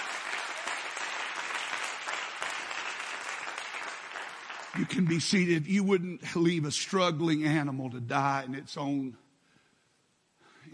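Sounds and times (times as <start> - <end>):
audience applause: 0.0 - 5.3
speech: 4.8 - 9.2.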